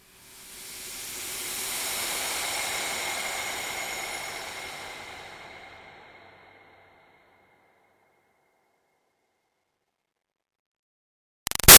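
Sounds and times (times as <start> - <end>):
airy toxin steam release: 0.0 - 6.5.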